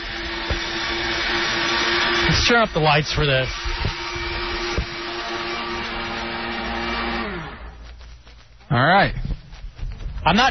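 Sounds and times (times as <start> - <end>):
blender running: 0.0 - 7.9
speech: 2.4 - 3.7, 8.7 - 9.3, 10.3 - 10.4.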